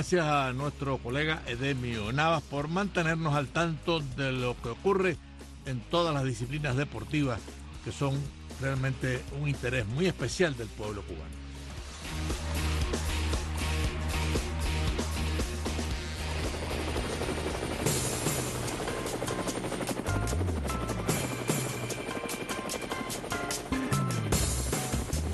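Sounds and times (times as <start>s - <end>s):
speech: 0.0s - 11.4s
rumbling helicopter engine roar: 11.8s - 22.0s
helicopter rotor blades chopping in Cuba: 12.0s - 25.3s.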